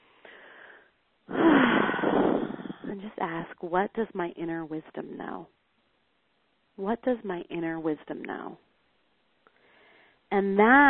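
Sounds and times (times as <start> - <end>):
deep breath during a guided eyes-closed exercise: 0.0 - 2.9, 9.5 - 10.3
speech: 3.0 - 5.6, 6.8 - 8.7, 10.3 - 10.8.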